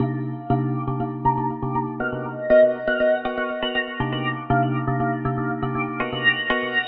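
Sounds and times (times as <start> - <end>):
tubular minor chords on keys organ piano loops: 0.0 - 6.7.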